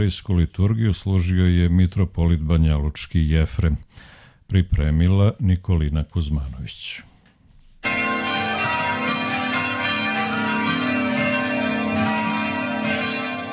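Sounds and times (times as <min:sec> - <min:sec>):
speech: 0:00.0 - 0:07.1
church bells ringing: 0:07.8 - 0:13.5.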